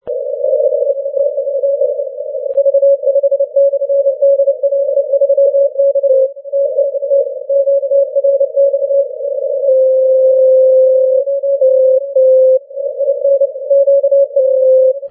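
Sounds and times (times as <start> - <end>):
80m CW Morse code signal: 0.1 - 15.1.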